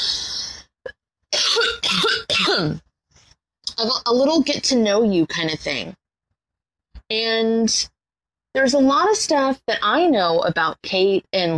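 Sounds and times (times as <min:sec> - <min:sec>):
person coughing harshly: 0:01.4 - 0:02.8
speech: 0:02.6 - 0:02.9, 0:03.8 - 0:06.0, 0:07.1 - 0:11.5.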